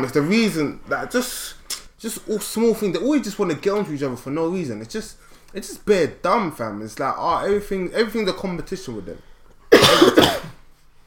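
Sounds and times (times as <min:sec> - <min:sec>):
speech: 0:00.0 - 0:10.4
two people coughing at the same time: 0:09.7 - 0:10.6.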